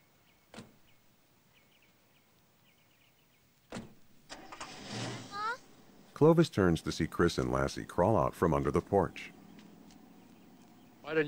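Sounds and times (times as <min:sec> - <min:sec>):
faint bird chirps: 0:00.0 - 0:03.6, 0:09.1 - 0:11.2
car door thumping shut: 0:03.7 - 0:05.3
car rumbling off: 0:04.2 - 0:11.2
speech: 0:06.2 - 0:09.4, 0:11.1 - 0:11.2.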